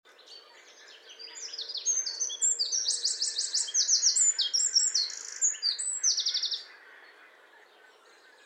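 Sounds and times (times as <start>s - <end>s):
Eurasian wren Troglodytes troglodytes singing: 0.2s - 6.8s.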